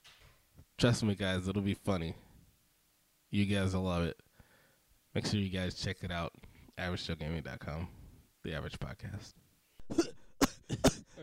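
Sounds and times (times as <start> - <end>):
speech: 0.8 - 2.3, 3.3 - 4.3, 5.2 - 10.1
coughing: 9.8 - 11.2.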